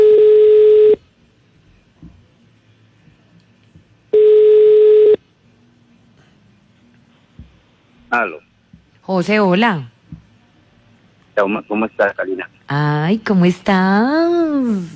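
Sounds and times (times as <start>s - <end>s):
telephone ringback tones from an outgoing call: 0.0s - 1.0s, 4.2s - 5.2s
faint noise: 0.0s - 14.9s
speech: 8.2s - 8.5s, 9.1s - 9.9s, 11.4s - 14.9s.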